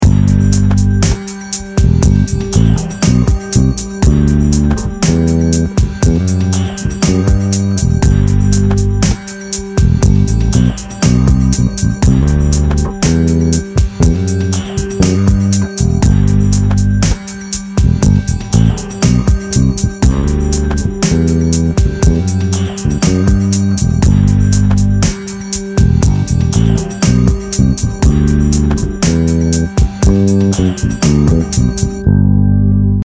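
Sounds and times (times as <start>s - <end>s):
bass groove in Ionian mode: 0.0s - 33.0s.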